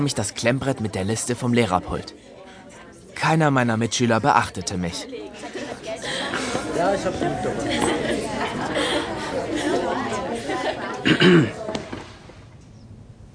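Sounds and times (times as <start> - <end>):
speech: 0.0 - 2.4, 3.2 - 5.2, 6.8 - 10.1, 10.7 - 11.6
classroom chatter of many overlapping voices: 0.0 - 12.4
laughter: 5.0 - 11.9
person clearing throat: 11.0 - 11.6.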